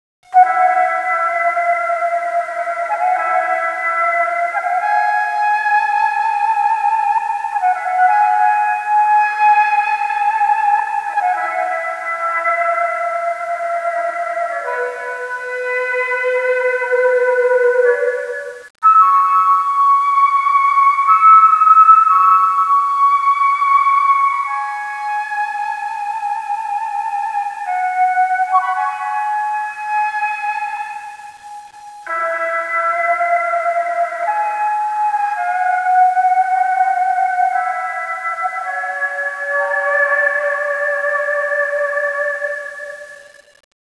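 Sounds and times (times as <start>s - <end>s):
daegeum bamboo flute playing: 0.3s - 43.6s.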